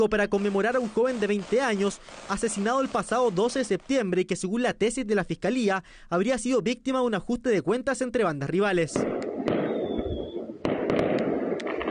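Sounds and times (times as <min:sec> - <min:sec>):
fireworks banging during the night in Quilicura: 0:00.0 - 0:04.3, 0:09.0 - 0:11.8
speech: 0:00.0 - 0:09.6
thin whistle: 0:09.6 - 0:10.4.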